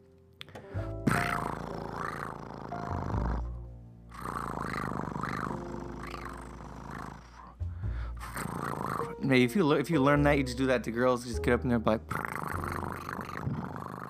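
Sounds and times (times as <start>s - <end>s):
person imitating a cat purring: 1.0s - 7.6s, 8.2s - 9.2s, 12.1s - 14.0s
speech: 9.3s - 12.2s.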